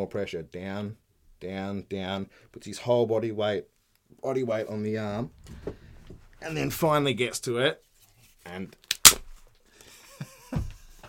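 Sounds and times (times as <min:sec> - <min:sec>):
speech: 0:00.0 - 0:05.8, 0:06.4 - 0:08.9
stick struck loudly in a studio: 0:08.9 - 0:09.4.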